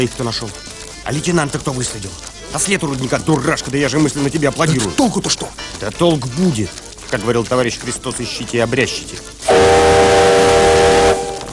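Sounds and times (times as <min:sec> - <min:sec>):
speech: 0:00.0 - 0:10.1
steam train whistle as the locomotive pulls away: 0:09.5 - 0:11.5.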